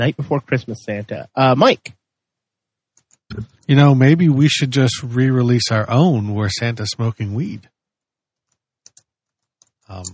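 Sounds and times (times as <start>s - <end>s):
speech: 0.0s - 2.0s, 3.3s - 7.8s, 9.9s - 10.1s
computer keyboard keystrokes clicking: 2.9s - 3.7s, 8.4s - 10.1s.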